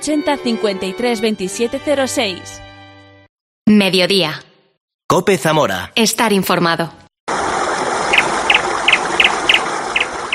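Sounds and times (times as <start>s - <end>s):
speech: 0.0s - 2.7s, 3.7s - 4.5s, 5.1s - 7.0s
small bird singing with short high chirps: 8.1s - 10.3s.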